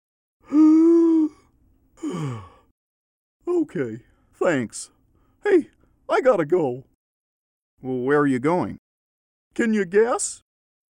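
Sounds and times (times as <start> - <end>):
overexcited person taking a deep breath to calm down: 0.4 - 2.7
speech: 3.7 - 6.9, 7.8 - 8.8, 9.6 - 10.4.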